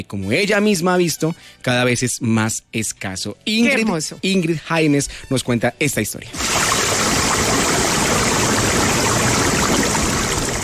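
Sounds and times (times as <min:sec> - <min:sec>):
speech: 0:00.0 - 0:06.9
river water flowing over stones: 0:06.4 - 0:10.6.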